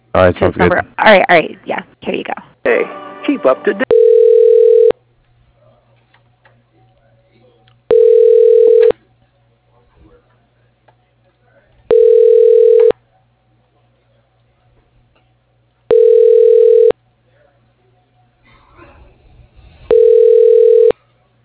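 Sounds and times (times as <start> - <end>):
faint steady hum: 0.0 - 21.4
speech: 0.2 - 3.8
ringback tone of a telephone line while a call is transferred to voicemail: 3.8 - 5.0, 7.9 - 8.9, 11.9 - 12.9, 15.9 - 16.9, 19.9 - 20.9.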